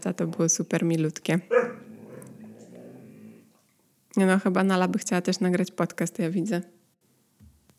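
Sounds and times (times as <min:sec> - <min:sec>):
speech: 0:00.0 - 0:01.7, 0:04.2 - 0:06.8
dog barking: 0:01.5 - 0:02.4
dog whining: 0:01.5 - 0:03.5.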